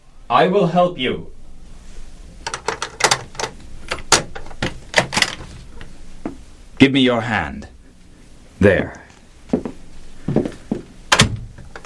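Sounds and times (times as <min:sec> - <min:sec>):
speech: 0:00.3 - 0:01.4, 0:06.8 - 0:07.7, 0:08.6 - 0:09.0
door opening with latch and frame clicks and rattles: 0:02.4 - 0:05.9, 0:11.1 - 0:11.8.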